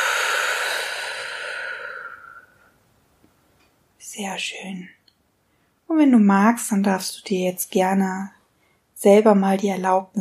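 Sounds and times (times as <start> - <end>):
long breath out during a guided breathing exercise: 0.0 - 2.7
speech: 4.2 - 5.0, 5.9 - 8.4, 9.0 - 10.2.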